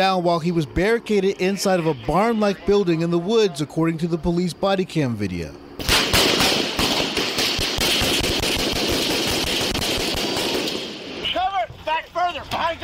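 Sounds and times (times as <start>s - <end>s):
speech: 0.0s - 5.6s
urgent shouted voices: 1.6s - 4.3s, 11.2s - 12.8s
loud rapid gunfire from several weapons: 5.8s - 11.3s.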